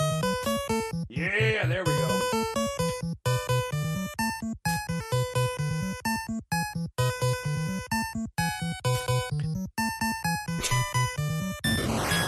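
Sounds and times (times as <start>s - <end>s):
square-wave chiptune gameplay music from a NES video game: 0.0s - 12.2s
speech: 1.2s - 2.1s
wavering swooping video game sound effect: 10.6s - 12.2s.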